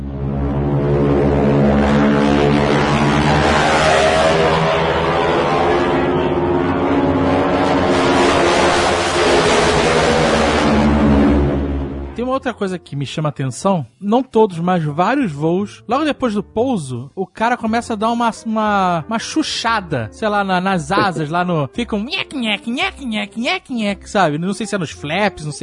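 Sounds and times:
T-6 propeller plane engine roaring in a dive with supersonic propeller tips: 0:00.0 - 0:12.2
speech: 0:12.4 - 0:25.6.

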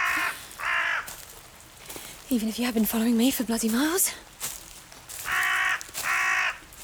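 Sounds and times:
crow cawing in a forest: 0:00.0 - 0:02.0, 0:05.1 - 0:06.8
speech: 0:02.3 - 0:04.3.

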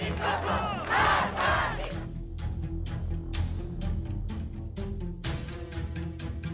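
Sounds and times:
people clapping: 0:00.0 - 0:02.0
large protest crowd chanting slogans: 0:00.0 - 0:02.1
steady rhythmic beats: 0:00.0 - 0:06.5.

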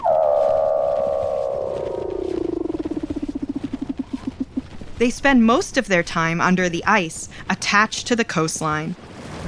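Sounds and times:
Weddell seal call with whistle and trill: 0:00.0 - 0:04.8
speech: 0:05.0 - 0:09.1.

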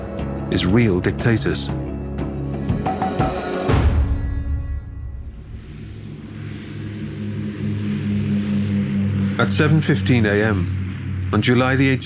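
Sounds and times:
small propeller airplane engine droning while taking off: 0:00.0 - 0:12.0
speech: 0:00.5 - 0:01.9, 0:09.4 - 0:12.0
breathy wash of air: 0:05.1 - 0:09.4.

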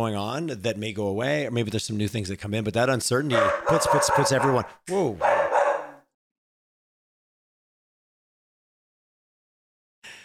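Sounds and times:
speech: 0:00.0 - 0:05.4
dog barking at passerby outside house: 0:03.3 - 0:06.1.

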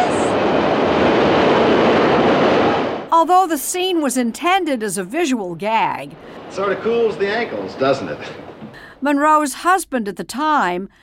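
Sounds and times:
subway train passing beneath a street grating: 0:00.0 - 0:03.1, 0:06.4 - 0:08.7
speech: 0:03.3 - 0:08.4, 0:09.0 - 0:11.0.

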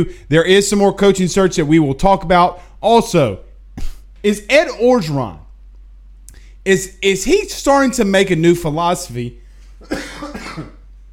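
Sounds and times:
speech: 0:00.0 - 0:05.4, 0:06.6 - 0:10.7
person coughing with a raspy throat-clearing tail: 0:09.8 - 0:10.9.

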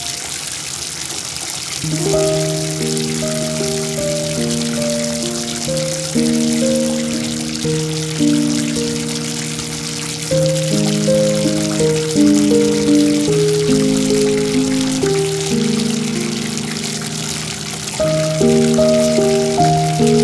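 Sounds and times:
water pouring into a tub: 0:00.0 - 0:20.2
slow melody of low sustained notes: 0:01.8 - 0:20.2.

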